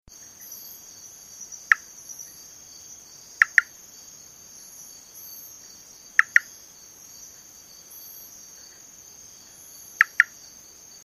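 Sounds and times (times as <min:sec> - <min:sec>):
Eleutherodactylus pantoni hollow two-note call in north-central Jamaica: 0:01.6 - 0:02.2, 0:03.3 - 0:03.8, 0:06.1 - 0:06.6, 0:09.9 - 0:10.4.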